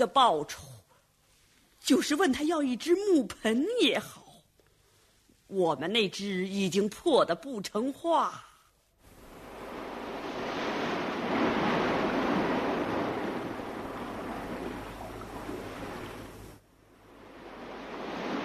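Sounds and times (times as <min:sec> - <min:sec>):
speech: 0:00.0 - 0:00.7, 0:01.8 - 0:04.2, 0:05.5 - 0:08.5
gentle sea waves washing in: 0:09.0 - 0:18.4
light wind noise: 0:09.1 - 0:18.4.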